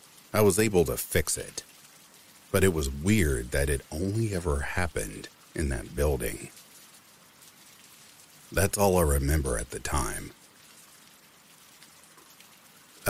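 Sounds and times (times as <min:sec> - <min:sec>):
steady rain pattering: 0:00.0 - 0:13.0
speech: 0:00.3 - 0:01.7, 0:02.5 - 0:06.7, 0:08.5 - 0:10.4.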